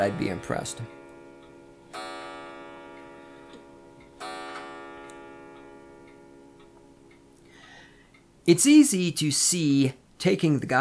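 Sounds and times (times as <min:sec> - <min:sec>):
speech: 0:00.0 - 0:01.0, 0:08.5 - 0:10.7
clock striking with resonant strikes: 0:00.0 - 0:07.4.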